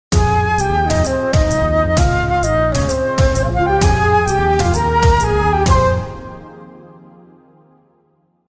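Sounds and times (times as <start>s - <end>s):
flute ringtone: 0.2s - 6.7s.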